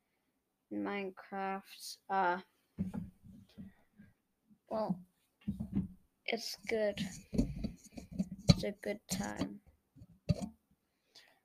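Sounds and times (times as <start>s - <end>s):
speech: 0.7s - 3.0s, 4.7s - 5.1s, 6.3s - 7.4s, 8.6s - 9.6s
thump of a microphone being clicked or handled: 5.5s - 6.0s.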